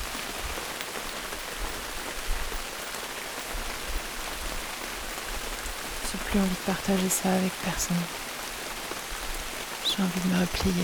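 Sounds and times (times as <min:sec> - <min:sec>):
heavy rain pattering densely on a surface: 0:00.0 - 0:10.8
speech: 0:06.1 - 0:08.2, 0:10.0 - 0:10.8.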